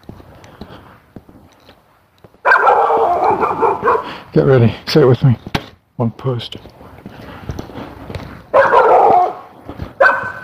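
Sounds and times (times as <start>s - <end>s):
dog barking: 2.4s - 4.1s, 8.5s - 10.4s
speech: 3.8s - 6.8s.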